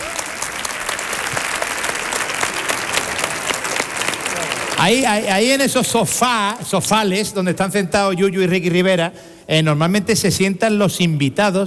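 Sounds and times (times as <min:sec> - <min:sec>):
audience applause: 0:00.0 - 0:05.7
speech: 0:04.8 - 0:11.6.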